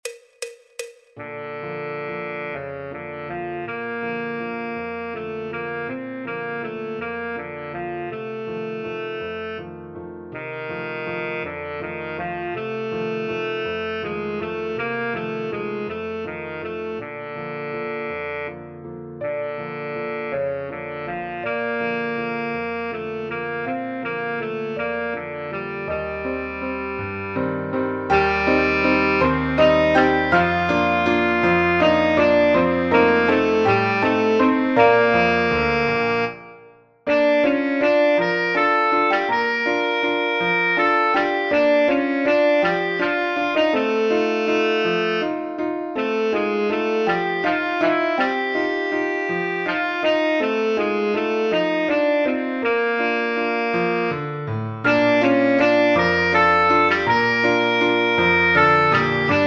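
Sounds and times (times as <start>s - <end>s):
tenor and soprano saxophone duet in C major: 1.2s - 9.7s, 10.3s - 59.4s.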